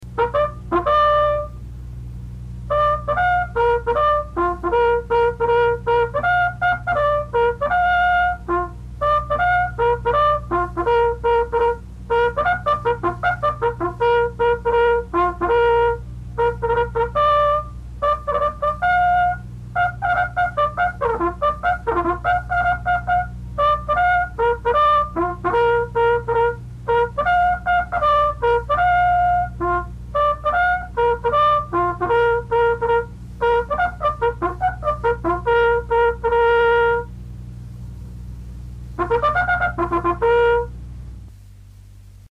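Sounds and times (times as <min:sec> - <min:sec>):
bugle calls: 0:00.2 - 0:01.5, 0:02.7 - 0:37.1, 0:39.0 - 0:40.7.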